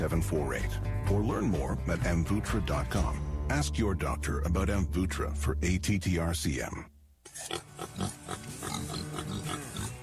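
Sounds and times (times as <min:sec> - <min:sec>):
speech: 0:00.0 - 0:08.2
pigs grunting on a pig farm in Middletown Missouri: 0:07.3 - 0:10.0.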